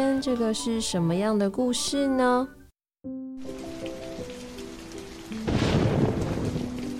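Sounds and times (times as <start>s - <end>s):
speech: 0.0s - 3.2s
heavy rain: 3.4s - 6.9s
rumbling roll of thunder: 5.4s - 6.9s.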